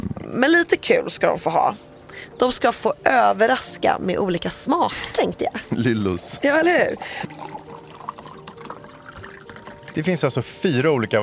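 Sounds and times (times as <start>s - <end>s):
speech: 0.3s - 7.6s, 10.0s - 11.2s
laughter: 5.0s - 6.2s
lemonade poured into a glass: 6.6s - 10.3s.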